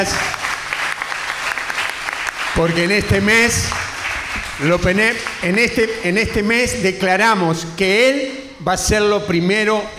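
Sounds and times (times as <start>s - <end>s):
speech: 0.0s - 0.3s, 2.6s - 3.9s, 4.6s - 9.9s
audience applauding: 0.0s - 6.0s.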